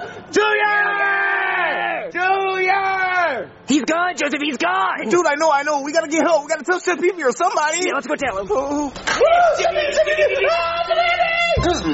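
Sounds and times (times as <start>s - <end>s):
speech: 0.3s - 0.8s, 3.4s - 11.9s
people screaming loudly together: 0.3s - 2.1s, 9.1s - 11.9s
laughter: 6.2s - 11.9s.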